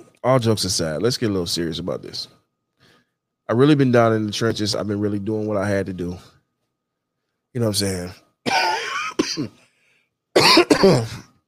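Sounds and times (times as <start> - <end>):
speech: 0.2 - 2.4, 3.5 - 6.4, 7.6 - 8.6, 9.3 - 9.6, 10.5 - 11.3
harsh coughing and throat clearing: 8.4 - 9.6, 10.3 - 11.4.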